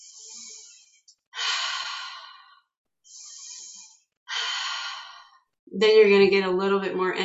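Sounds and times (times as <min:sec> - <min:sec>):
person demonstrating connected circular breathing: 0:00.0 - 0:05.6
speech: 0:05.8 - 0:07.2.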